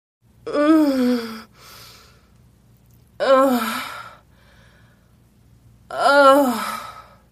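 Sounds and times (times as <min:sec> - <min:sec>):
person moaning: 0:00.5 - 0:01.5, 0:03.2 - 0:04.2, 0:05.9 - 0:07.2.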